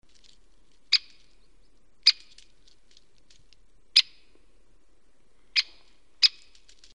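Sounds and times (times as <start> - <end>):
great spotted woodpecker: 0.9 - 2.5, 4.0 - 4.2, 5.6 - 6.9.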